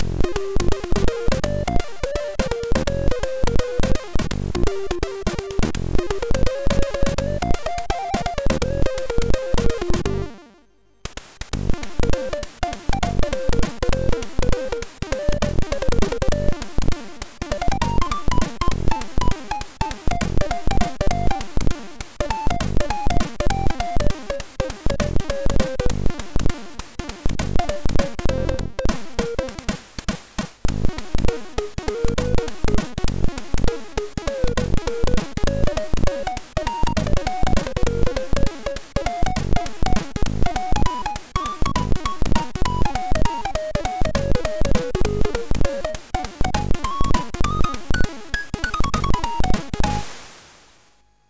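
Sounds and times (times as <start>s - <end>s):
jazz music on a MOS6581R3 SID chip: 0.0s - 10.7s, 11.6s - 29.7s, 30.7s - 50.1s.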